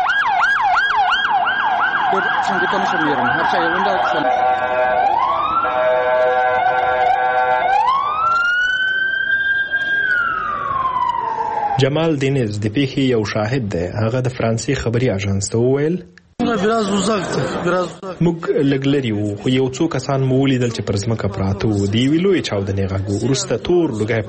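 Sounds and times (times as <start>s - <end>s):
ambulance and police car sirens: 0.0s - 12.4s
speech: 2.1s - 5.1s, 11.8s - 24.2s
laughter: 16.4s - 19.6s.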